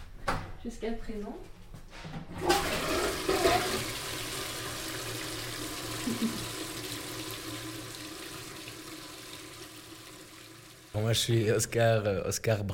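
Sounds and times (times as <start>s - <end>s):
speech: 0.6s - 4.1s, 11.0s - 12.7s
toilet flushing: 2.3s - 11.8s.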